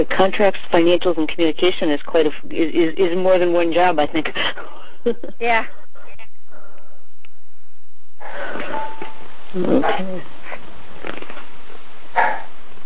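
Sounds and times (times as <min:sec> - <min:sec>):
speech: 0:00.0 - 0:05.8, 0:08.2 - 0:10.4
dogs barking: 0:12.1 - 0:12.6.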